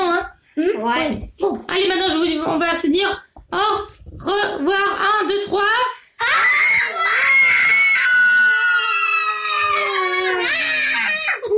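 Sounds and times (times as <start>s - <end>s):
speech: 0.8s - 7.0s
several voices shouting together loudly: 6.2s - 11.2s.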